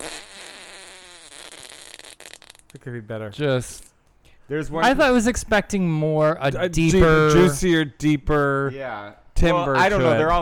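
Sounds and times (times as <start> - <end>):
buzzy reedy fart sound effect: 0.0 - 2.8
speech: 2.8 - 3.9, 4.5 - 10.3.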